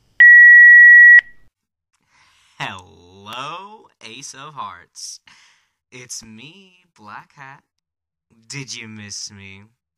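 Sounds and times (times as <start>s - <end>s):
voicemail beep: 0.2s - 1.4s
speech: 3.3s - 7.7s, 8.3s - 9.8s.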